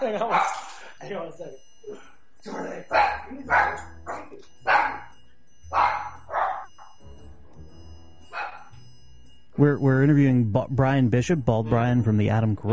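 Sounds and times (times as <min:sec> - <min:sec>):
dogs barking: 0:00.0 - 0:00.8, 0:02.8 - 0:07.0, 0:08.2 - 0:08.8
speech: 0:00.0 - 0:01.7, 0:09.6 - 0:12.7.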